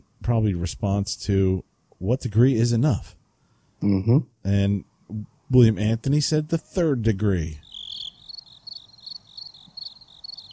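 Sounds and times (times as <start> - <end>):
speech: 0.2 - 3.2, 3.8 - 7.7
crickets chirping: 7.6 - 10.5.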